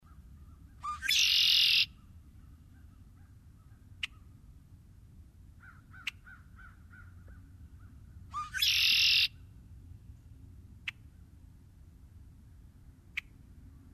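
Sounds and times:
red-winged blackbird harsh buzzy trill song: 0.8 - 2.0, 8.3 - 9.4
low background rumble: 1.8 - 8.6, 9.3 - 13.9.

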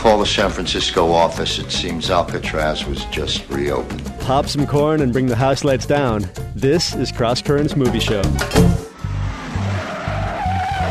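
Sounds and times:
speech: 0.2 - 8.8
car tires squealing and burning rubber in a 1968 film car chase: 8.9 - 10.8.

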